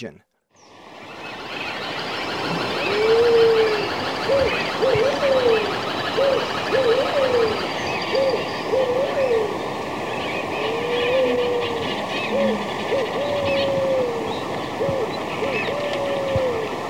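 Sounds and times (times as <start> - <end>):
Maranon Pigeon calling in South America: 1.7 - 16.7.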